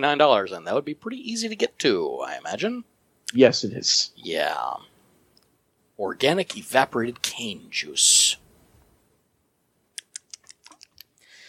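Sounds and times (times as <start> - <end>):
speech: 0.0 - 4.9, 6.0 - 8.4
computer mouse and keyboard clicks: 10.0 - 11.1.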